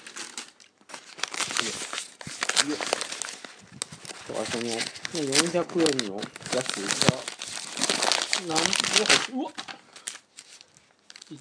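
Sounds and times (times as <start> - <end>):
plastic card pack crinkling and rustling while cut open with scissors: 0.0 - 11.3
speech: 1.6 - 2.0, 2.6 - 3.1, 4.3 - 7.4, 8.4 - 9.7.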